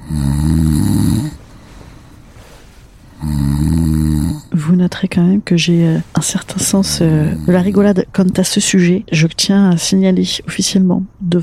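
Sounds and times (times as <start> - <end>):
man snoring loudly: 0.0 - 4.5, 6.7 - 7.9
speech: 0.1 - 0.6, 5.0 - 11.4.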